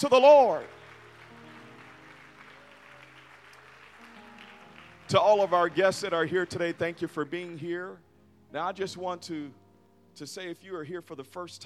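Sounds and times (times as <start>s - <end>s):
speech: 0.0s - 0.8s, 5.1s - 9.6s, 10.2s - 11.6s
audience clapping hands at a church service: 0.5s - 7.6s.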